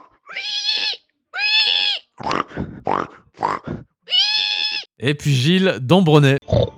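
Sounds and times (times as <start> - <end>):
person imitating pig oinks and squeals for a pig-squeal contest: 0.3 - 4.8
speech: 5.0 - 6.6.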